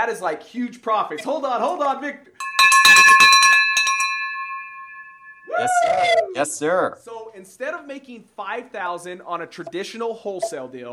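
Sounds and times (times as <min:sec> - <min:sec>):
speech: 0:00.0 - 0:03.4, 0:05.6 - 0:10.9
victory bell ringing: 0:02.4 - 0:05.7.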